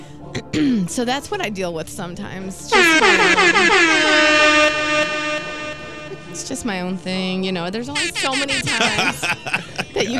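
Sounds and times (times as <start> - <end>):
speech: 0.6 - 5.2, 6.4 - 10.1
laughter: 2.7 - 3.8, 8.0 - 10.1
loud sustained air horn blast: 2.7 - 6.6, 8.0 - 9.2.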